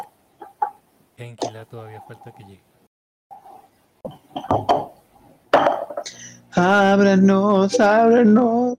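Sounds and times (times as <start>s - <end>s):
speech: 1.2s - 2.7s, 6.6s - 8.6s
twenty-sided die clattering across a hard tabletop: 4.4s - 6.0s.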